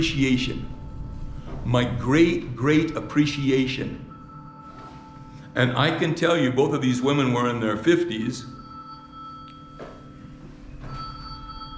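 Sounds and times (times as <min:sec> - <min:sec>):
speech: 0:00.0 - 0:00.8, 0:01.6 - 0:04.0, 0:05.6 - 0:08.6
phone ringing with sustained electronic tones: 0:02.6 - 0:11.7.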